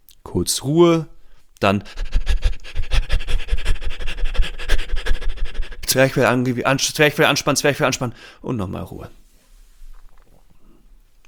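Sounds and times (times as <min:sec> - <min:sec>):
speech: 0:00.3 - 0:02.1, 0:06.0 - 0:09.2
person panting rapidly as a breathing exercise: 0:01.6 - 0:06.7.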